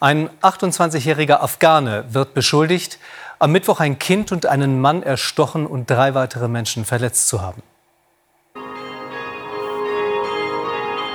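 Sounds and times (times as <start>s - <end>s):
speech: 0.0s - 7.7s
church bells ringing: 8.6s - 11.1s.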